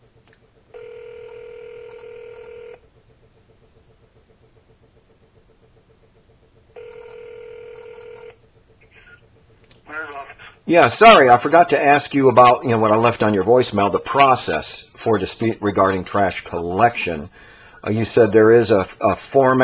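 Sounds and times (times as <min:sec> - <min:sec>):
faint hiss: 0:00.0 - 0:19.6
telephone line ringing on an outgoing call: 0:00.7 - 0:02.8, 0:06.8 - 0:08.4
speech: 0:10.7 - 0:19.6.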